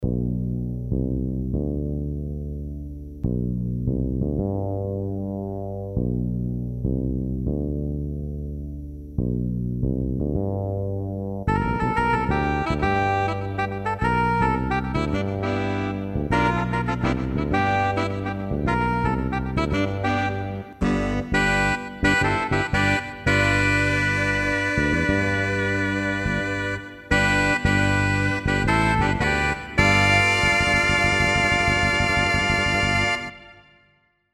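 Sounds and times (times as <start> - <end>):
fretless bass in a split patch: 0.0 - 33.6
saxophone in a split patch: 11.5 - 33.8.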